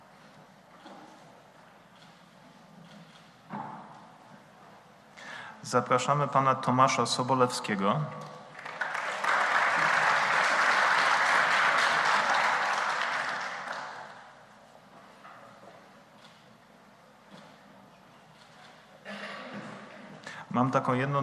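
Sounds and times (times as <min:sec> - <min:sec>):
speech: 0:05.7 - 0:08.3, 0:20.8 - 0:21.2
audience applause: 0:08.6 - 0:14.4.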